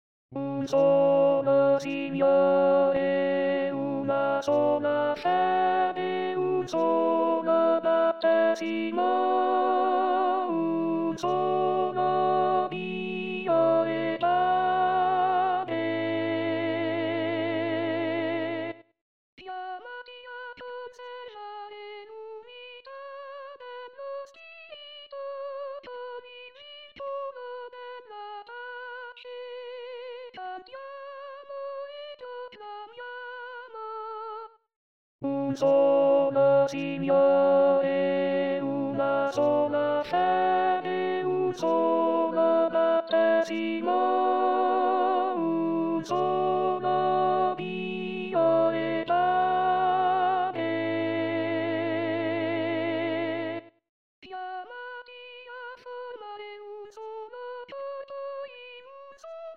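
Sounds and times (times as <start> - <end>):
contraltos singing: 0.4 - 18.6, 35.4 - 53.6.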